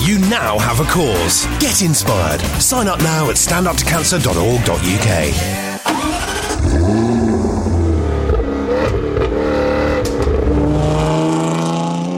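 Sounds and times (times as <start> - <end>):
speech: 0.1 - 7.6
Jaguar car engine starting and revving: 5.9 - 12.1.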